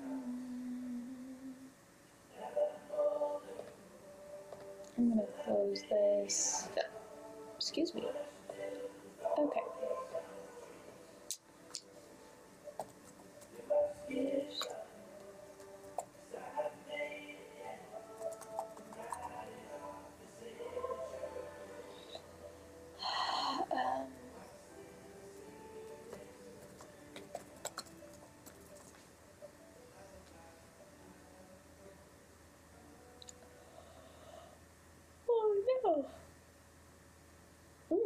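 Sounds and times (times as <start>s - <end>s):
steady low hum: 0.0s - 38.0s
speech: 5.0s - 7.0s, 7.6s - 8.4s, 9.4s - 9.6s
big drawn-out yawn: 23.0s - 24.1s
breathy exhale: 33.6s - 34.6s.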